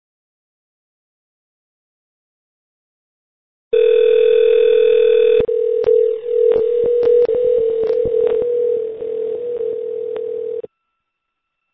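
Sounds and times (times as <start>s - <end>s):
telephone dial tone while a call connects: 3.8s - 10.7s.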